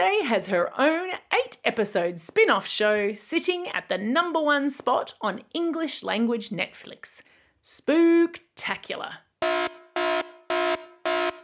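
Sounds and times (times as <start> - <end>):
speech: 0.0 - 9.2
harsh buzzing joke alarm horn blasts: 9.4 - 11.4.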